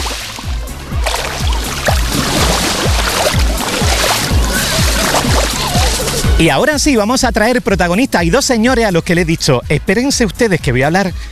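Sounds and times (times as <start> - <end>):
Mediterranean sea waves washing onto a beach: 0.0 - 6.4
speech: 6.4 - 11.3.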